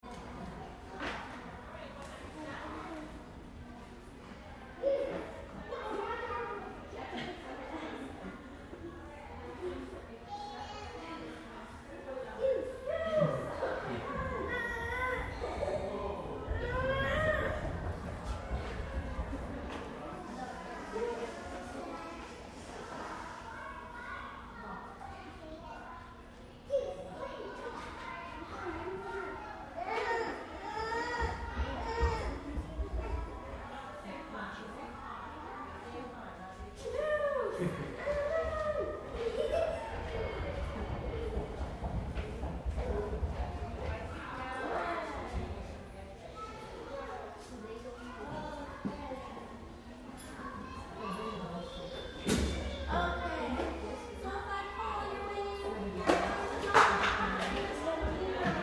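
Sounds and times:
crowd of kids at gymnastics: 0.0s - 58.6s.

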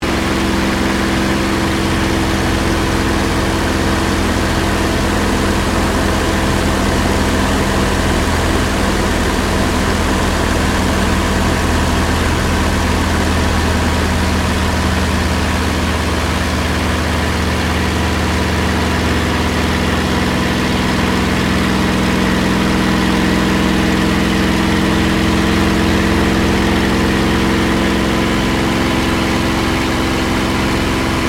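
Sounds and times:
Supermarine Spitfire Mk XVI flying heard from interior: 0.0s - 31.2s.

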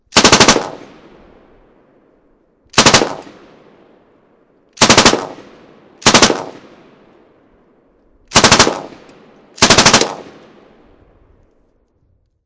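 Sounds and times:
M249 machine gun automatic fire on a bridge: 0.1s - 1.0s, 2.8s - 3.4s, 4.8s - 6.7s, 8.3s - 10.4s.

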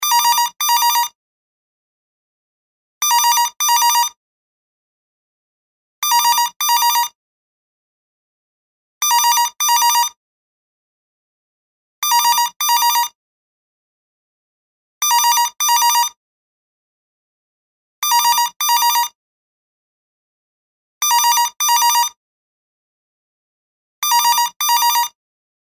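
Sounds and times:
modern digital phone ringing: 0.0s - 1.1s, 3.0s - 4.1s, 6.0s - 7.1s, 9.0s - 10.1s, 12.0s - 13.1s, 15.0s - 16.1s, 18.0s - 19.1s, 21.0s - 22.2s, 24.0s - 25.1s.

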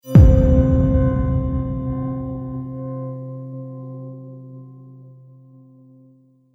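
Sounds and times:
haunting chimes trailer hit: 0.0s - 3.1s.

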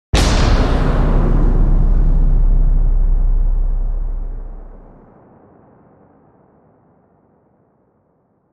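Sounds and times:
huge incendiary bomb explosion: 0.1s - 5.4s.

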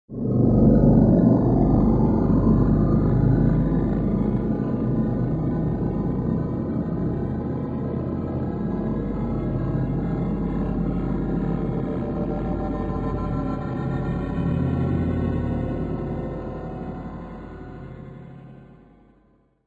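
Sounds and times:
thriller-horror ambience: 0.1s - 19.2s.

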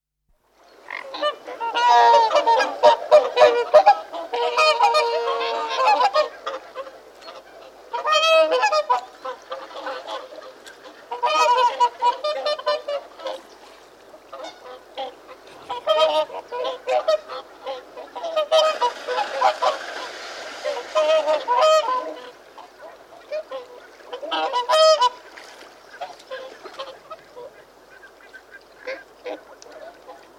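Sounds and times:
barnacle goose calls: 0.9s - 13.4s, 14.3s - 25.3s, 25.9s - 30.3s
whooper swans trumpeting while feeding on water: 0.9s - 13.5s, 14.3s - 30.3s.

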